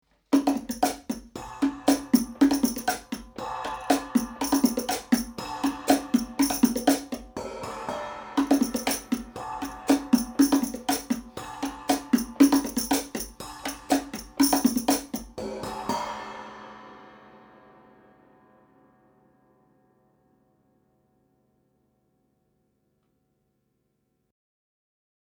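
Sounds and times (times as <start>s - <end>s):
percussion recorded with Blumlein ribbon microphones: 0.3s - 19.0s.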